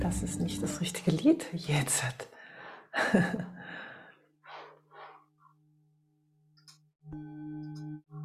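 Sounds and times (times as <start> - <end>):
speech: 0.0 - 2.3, 3.0 - 3.8
person breathing in and out in a guided breathing exercise: 2.3 - 3.0, 3.6 - 5.3.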